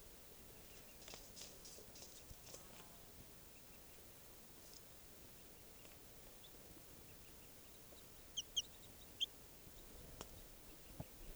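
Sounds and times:
soft outdoor hiss: 0.0 - 11.3
juvenile wild bird clucking in a camp next to a truck: 8.4 - 9.3.

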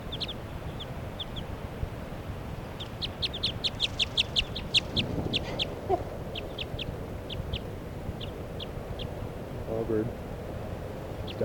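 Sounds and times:
female wild bird giving high thin chirping calls: 0.0 - 1.5, 2.6 - 9.2, 11.1 - 11.4
steady low outdoor rumble: 0.0 - 11.4.

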